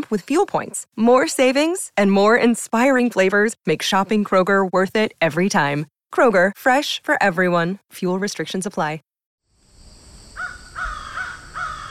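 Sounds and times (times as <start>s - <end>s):
speech: 0.0s - 9.1s
soft outdoor hiss: 9.5s - 11.8s
crow cawing: 10.4s - 11.8s.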